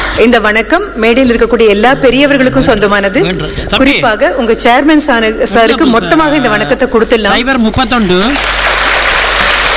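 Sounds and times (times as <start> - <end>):
speech: 0.2 - 8.5
audience applause at a formal stage event: 8.2 - 9.7.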